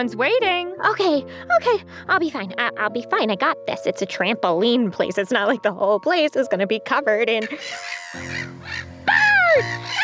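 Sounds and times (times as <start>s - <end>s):
speech: 0.0s - 10.0s
birds cawing: 7.4s - 10.0s.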